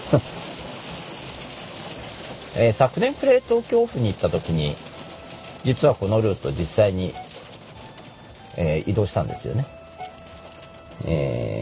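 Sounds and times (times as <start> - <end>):
rain falling: 0.0 - 11.5
speech: 0.1 - 0.4, 2.6 - 4.8, 5.6 - 7.2, 8.6 - 9.8, 11.0 - 11.5.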